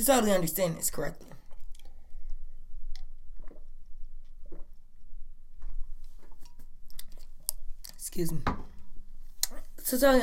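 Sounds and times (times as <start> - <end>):
speech: 0.0 - 1.3, 8.2 - 8.6, 9.9 - 10.2
low hum: 0.0 - 10.2
person sipping a drink and swallowing: 1.3 - 8.0.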